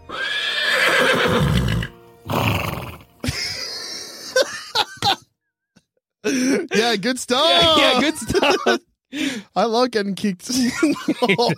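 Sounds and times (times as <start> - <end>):
horse neighing loudly in a long whinny: 0.0 - 3.1
laughter: 3.2 - 5.3, 6.3 - 8.9, 10.5 - 11.5
speech: 7.0 - 11.5.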